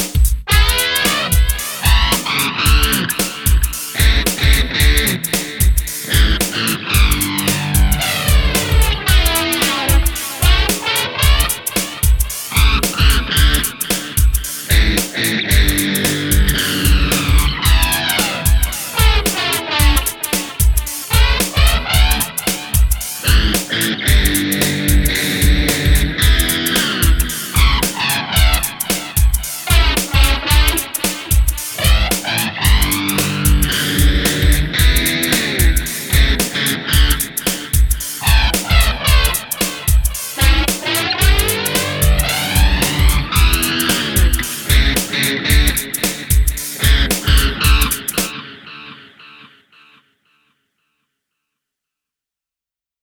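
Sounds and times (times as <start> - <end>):
90s UK dance music: 0.2 - 48.3
90s UK dance vocals with flanger echo: 48.3 - 50.0.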